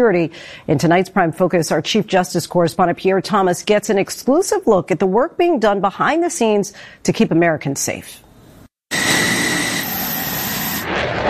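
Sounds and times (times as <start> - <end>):
speech: 0.0 - 8.2
F-16 fighter jet taking off from an air force base: 8.9 - 11.2.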